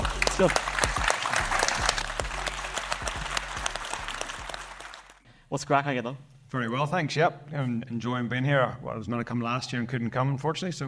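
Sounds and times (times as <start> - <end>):
audience applause: 0.0 - 5.2
speech: 0.4 - 0.9, 5.5 - 10.8.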